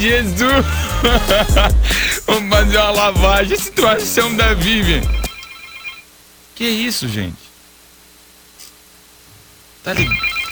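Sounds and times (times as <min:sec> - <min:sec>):
speech: 0:00.0 - 0:05.3, 0:06.6 - 0:07.4, 0:09.8 - 0:10.4
laughter: 0:00.4 - 0:05.0
phone ringtone for an incoming call: 0:04.4 - 0:06.1, 0:10.0 - 0:10.5.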